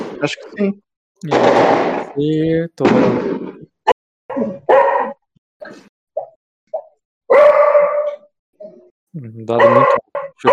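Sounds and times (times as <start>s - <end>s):
speech: 0.2s - 3.6s, 9.1s - 10.5s
nervous dog barking and yipping: 4.3s - 5.2s, 6.2s - 8.3s, 9.5s - 10.5s.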